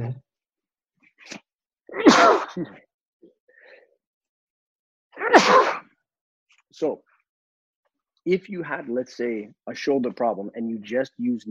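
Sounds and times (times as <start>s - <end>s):
speech: 1.2s - 2.9s, 5.2s - 5.8s, 6.8s - 7.1s, 8.2s - 11.4s
person sneezing: 1.3s - 2.8s, 5.2s - 5.8s.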